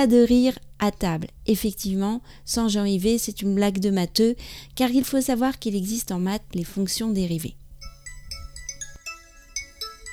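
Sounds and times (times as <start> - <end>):
speech: 0.0 - 7.6
mobile phone melodic electronic ringtone: 7.8 - 10.1.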